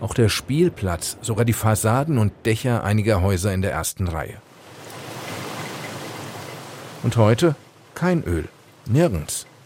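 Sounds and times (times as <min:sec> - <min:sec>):
speech: 0:00.1 - 0:04.5, 0:07.0 - 0:09.5
Atlantic sea surf breaking against rocks beside a seaside square in rainy weather: 0:04.5 - 0:09.6.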